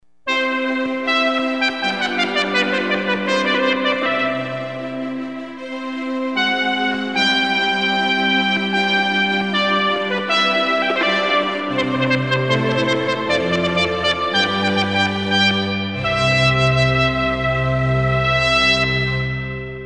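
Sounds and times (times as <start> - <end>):
trumpet playing 440 tone: 0.3 - 19.8.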